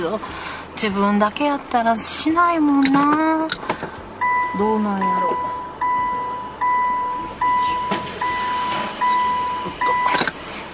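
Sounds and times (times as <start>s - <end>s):
speech: 0.0s - 3.8s, 4.6s - 5.6s
low vehicle engine rumble while reversing into a garage: 0.0s - 10.7s
vehicle reversing alarm beeping outdoors: 4.2s - 10.3s.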